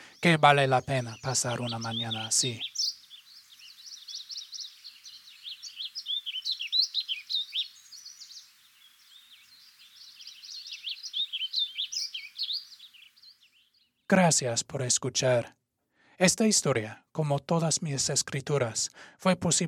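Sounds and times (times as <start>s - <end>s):
Warbling Vireo song in Montana: 0.0s - 14.1s
speech: 0.2s - 2.7s, 14.1s - 15.6s, 16.2s - 19.6s.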